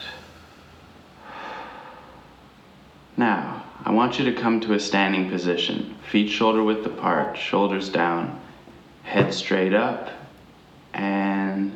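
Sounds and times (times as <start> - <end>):
single slow breathy exhale: 0.0 - 2.4
speech: 3.2 - 8.5, 9.1 - 10.2, 11.0 - 11.7.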